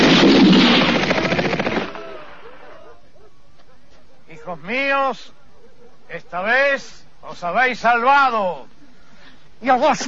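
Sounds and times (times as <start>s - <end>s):
gunfire from a firing squad: 0.0s - 2.4s
speech: 4.5s - 5.4s, 6.1s - 8.7s, 9.6s - 10.0s.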